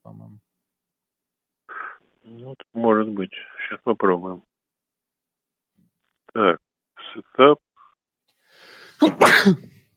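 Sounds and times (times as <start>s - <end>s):
speech: 2.3s - 4.5s, 6.4s - 7.6s, 9.0s - 9.7s
sneeze: 9.0s - 9.8s.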